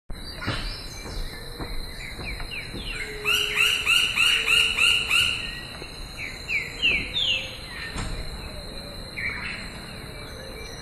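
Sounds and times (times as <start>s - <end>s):
Dryocopus galeatus woodpecker: 0.2s - 8.6s.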